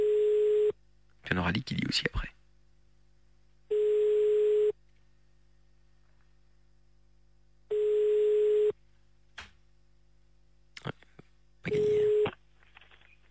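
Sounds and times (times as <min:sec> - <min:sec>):
telephone ringback tone on a line dialled to Herstal: 0:00.0 - 0:00.8, 0:03.7 - 0:04.8, 0:07.7 - 0:08.8, 0:11.7 - 0:12.3
speech: 0:01.3 - 0:02.4.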